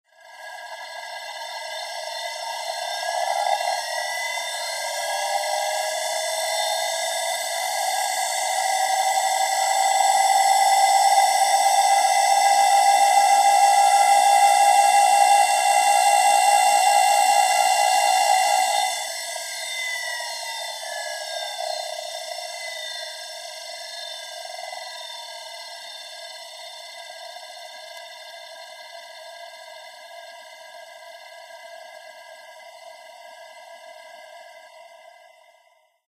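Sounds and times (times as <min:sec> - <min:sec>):
synth centrifuge motor starting up: 0:00.2 - 0:27.9.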